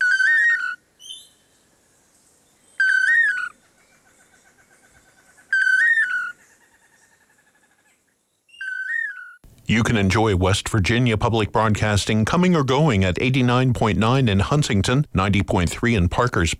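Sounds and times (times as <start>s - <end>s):
pair of long-tailed manakins singing whistled duet: 0.0s - 7.2s, 8.1s - 9.4s
speech: 9.7s - 16.5s.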